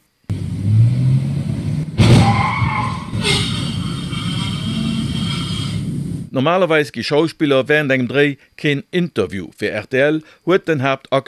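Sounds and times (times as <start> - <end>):
car crashing during a stunt shoot for a television series: 0.3 - 6.2
car engine roar during a stunt shoot: 0.3 - 6.3
car tyre screech during a stunt shoot: 2.0 - 6.0
speech: 6.4 - 11.2.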